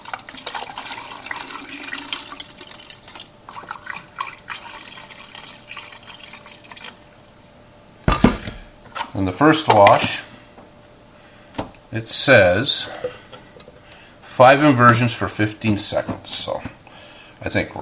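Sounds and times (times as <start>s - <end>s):
tap water pouring into a container: 0.0s - 7.0s
speech: 9.2s - 10.3s, 11.9s - 13.2s, 14.4s - 16.8s, 17.4s - 17.7s.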